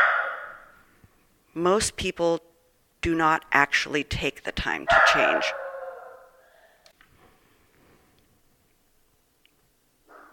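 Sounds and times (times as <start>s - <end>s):
two dogs barking, faint and muffled: 0.0s - 0.7s, 4.9s - 6.4s, 10.1s - 10.3s
speech: 1.6s - 5.6s.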